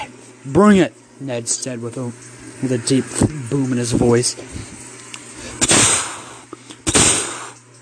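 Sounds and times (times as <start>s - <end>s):
speech: 0.4s - 4.8s
rifle gunshots in a storm: 6.9s - 7.4s.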